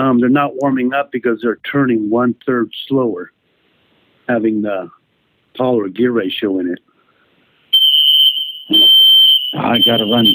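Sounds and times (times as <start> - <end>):
speech: 0.0 - 3.4, 4.3 - 5.0, 5.6 - 6.9, 8.7 - 10.3
building alarm system electronic alarm tone: 7.8 - 10.3.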